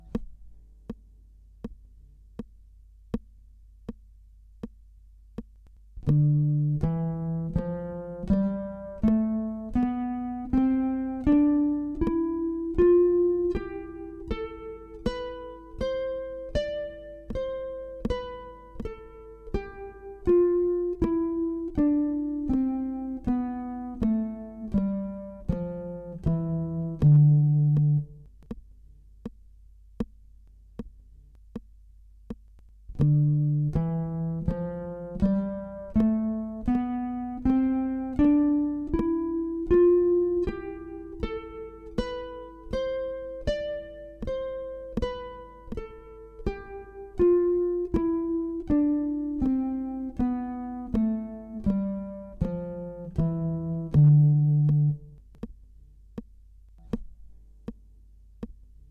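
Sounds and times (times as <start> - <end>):
guitar playing a Dorian scale in quarter notes: 6.0 - 28.6, 32.9 - 55.5.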